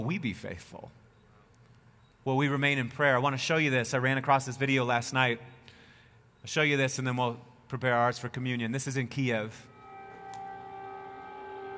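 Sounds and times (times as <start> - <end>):
speech: 0.0 - 1.0, 2.2 - 5.6, 6.4 - 9.7
air raid siren wailing over Kyiv Ukraine under attack: 9.7 - 11.7.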